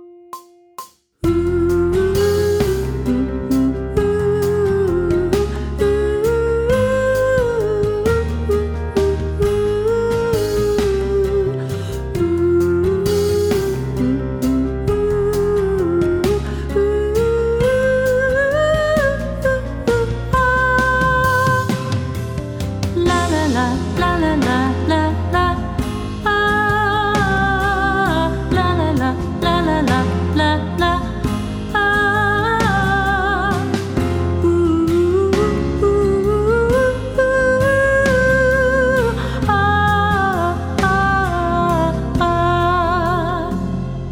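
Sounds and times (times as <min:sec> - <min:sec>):
person sight singing pop vocals: 0:01.2 - 0:22.2, 0:23.0 - 0:44.0.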